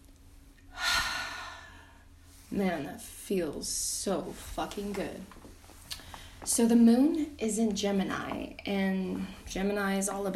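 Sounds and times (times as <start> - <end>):
deep breath taken slowly: 0.7 - 2.5
speech: 2.5 - 5.4, 6.4 - 10.3.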